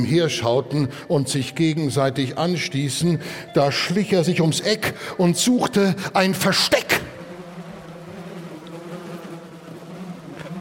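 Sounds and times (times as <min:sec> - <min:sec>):
speech: 0:00.0 - 0:07.0
many bees swarming around beehives at a farm: 0:05.0 - 0:10.6.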